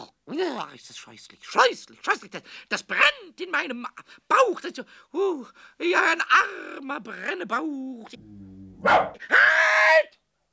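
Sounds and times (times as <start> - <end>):
speech: 0.4 - 10.2
large dog barking in a workshop: 8.7 - 9.3.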